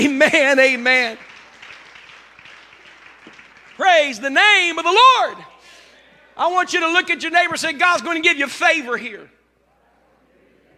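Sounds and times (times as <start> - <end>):
speech: 0.0 - 1.3, 3.8 - 5.5, 6.4 - 9.4
church audience applause: 0.4 - 4.4.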